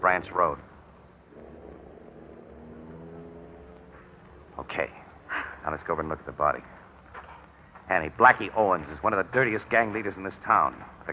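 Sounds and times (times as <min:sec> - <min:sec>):
speech: 0:00.1 - 0:00.7, 0:04.6 - 0:05.0, 0:05.6 - 0:06.8, 0:07.9 - 0:11.1
car engine humming while driving away: 0:00.8 - 0:07.6.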